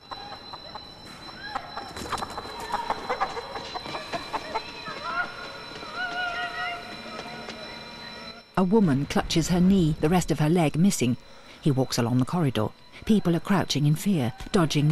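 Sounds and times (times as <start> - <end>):
chicken clucking on the steps of a war-damaged stairwell: 1.5 - 5.0
speech: 8.6 - 14.9.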